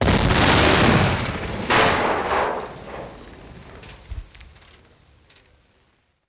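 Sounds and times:
TNT blast explosion: 0:00.0 - 0:04.3.

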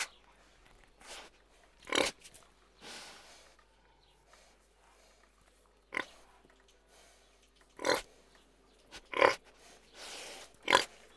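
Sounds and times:
several pigs grunting: 0:07.8 - 0:08.2, 0:09.0 - 0:09.5, 0:10.3 - 0:11.1.

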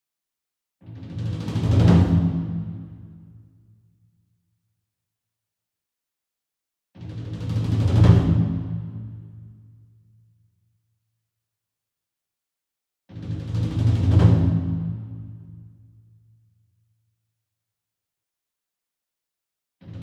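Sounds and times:
single 28 inch taiko drum roll with hard beater: 0:01.1 - 0:03.1, 0:07.4 - 0:09.1, 0:13.2 - 0:15.3.

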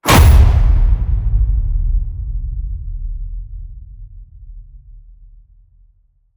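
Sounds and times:
designed cinematic metal crash hit: 0:00.0 - 0:03.4.

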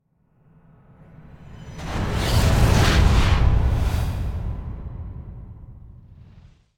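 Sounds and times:
whoosh: 0:01.7 - 0:06.7.

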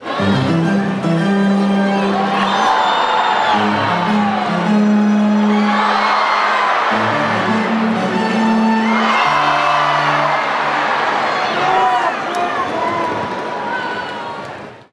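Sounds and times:
baseball stadium organ fanfare: 0:00.0 - 0:11.1
baseball crowd cheering: 0:00.0 - 0:14.9.

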